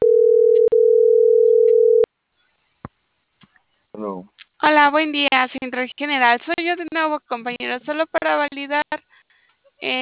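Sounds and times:
telephone dial tone while placing a call: 0.0s - 2.1s
speech: 4.6s - 9.2s, 9.8s - 10.0s.

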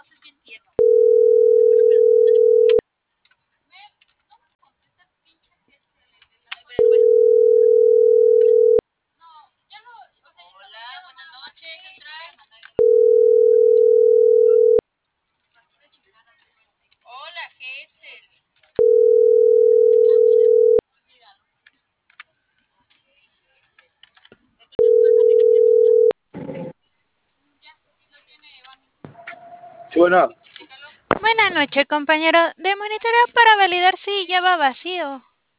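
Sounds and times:
telephone ringback tone while a call is dialed: 0.8s - 2.8s, 6.8s - 8.8s, 12.8s - 14.8s, 18.8s - 20.8s, 24.8s - 26.2s
speech: 30.0s - 30.4s, 31.6s - 35.3s.

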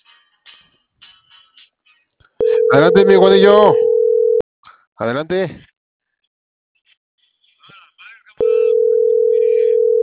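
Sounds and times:
loud steady telephone busy tone: 2.4s - 4.4s, 8.4s - 10.0s
speech: 2.7s - 3.8s, 5.0s - 5.7s.

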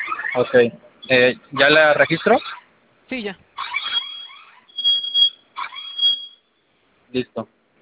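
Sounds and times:
security alarm system sounding with shrill electronic tones: 0.0s - 2.6s, 3.6s - 6.7s
speech: 0.4s - 3.4s, 7.1s - 7.6s.

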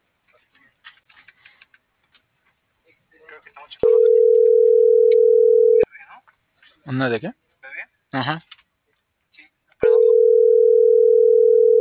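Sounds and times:
telephone line tone while dialing a call: 3.8s - 5.9s, 9.8s - 11.8s
speech: 6.9s - 7.4s, 8.1s - 8.5s.

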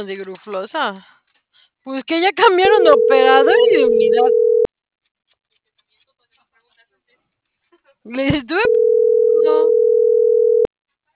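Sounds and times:
speech: 0.0s - 1.1s, 1.8s - 4.5s, 8.0s - 10.2s
loud steady telephone busy tone: 2.6s - 4.7s, 8.6s - 10.7s.

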